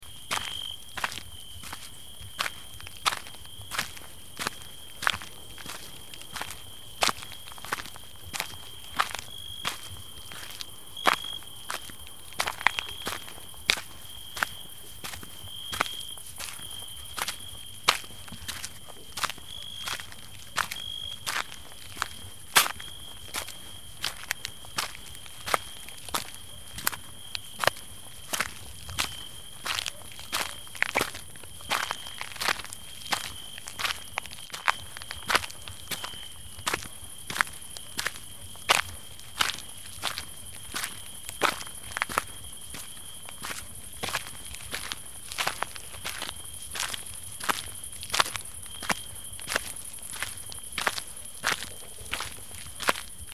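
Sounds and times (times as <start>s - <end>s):
footsteps walking at night: 0.0s - 53.3s.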